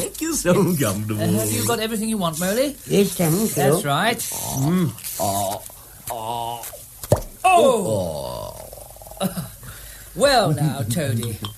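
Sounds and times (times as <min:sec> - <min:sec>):
speech: 0:00.3 - 0:06.7, 0:07.4 - 0:08.4, 0:09.2 - 0:09.5, 0:10.2 - 0:11.5
cork squeaking out of a bottle with a corkscrew: 0:03.5 - 0:05.7
cork pop: 0:07.0 - 0:07.4, 0:11.2 - 0:11.5.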